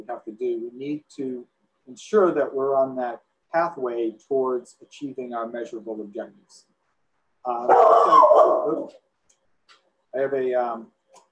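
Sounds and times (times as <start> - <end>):
speech: 0.0 - 6.7, 7.4 - 9.1, 10.1 - 11.0
dog barking: 7.7 - 8.9.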